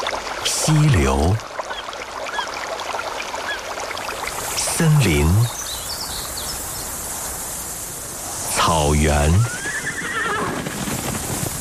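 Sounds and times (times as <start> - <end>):
speech: 0.7 - 1.5, 4.8 - 5.6, 8.9 - 9.6
dense steady hiss of insects in grassland: 4.1 - 11.5.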